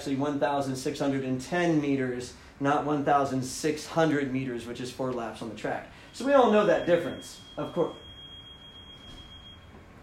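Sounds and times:
speech: 0.0s - 8.0s
thin high-pitched electronic alarm tone: 6.0s - 9.8s.

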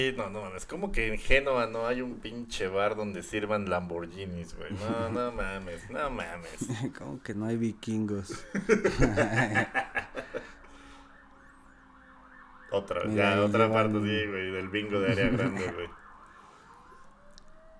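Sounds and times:
speech: 0.0s - 10.0s, 12.7s - 16.0s
people laughing: 4.6s - 7.2s, 8.3s - 10.8s, 14.8s - 16.0s
ambulance siren wailing: 4.7s - 6.7s, 7.3s - 17.7s.

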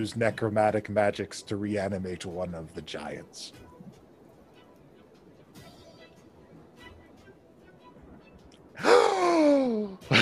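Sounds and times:
speech: 0.0s - 3.6s
people gasping in a courtroom: 8.8s - 9.7s.

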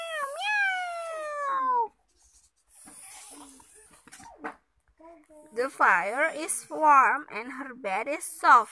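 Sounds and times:
cat meowing: 0.0s - 1.9s
speech: 5.6s - 8.7s.

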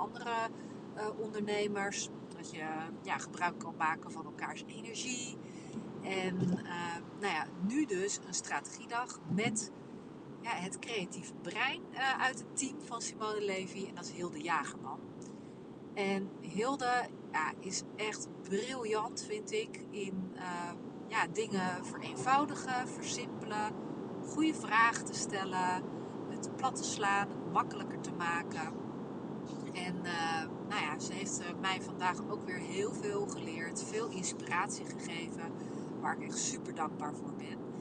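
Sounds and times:
speech: 0.0s - 9.8s, 10.4s - 15.2s, 16.0s - 25.9s, 26.5s - 28.8s, 29.8s - 37.6s
car interior road noise while driving: 0.0s - 37.7s.

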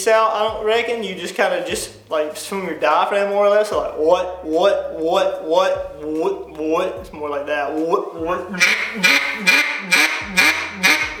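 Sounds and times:
speech: 0.0s - 10.4s
duck call blown giving nasal quacks: 8.6s - 11.1s.

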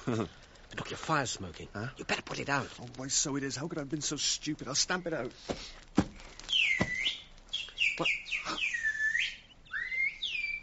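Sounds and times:
speech: 0.1s - 6.1s, 8.0s - 8.7s
person whistling to mimic a bird call: 6.7s - 10.6s.

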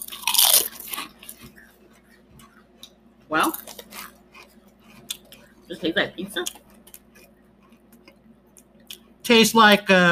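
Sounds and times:
person biting and chewing ketchup-flavoured potato chips: 0.0s - 1.5s, 3.4s - 5.4s
speech: 3.3s - 3.7s, 5.7s - 6.6s, 9.3s - 10.1s.

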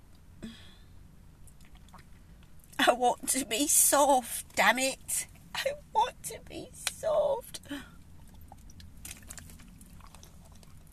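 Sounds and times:
low hum: 0.0s - 10.9s
person gulping a drink from a mug: 1.4s - 2.8s, 8.0s - 10.9s
speech: 2.9s - 7.9s.

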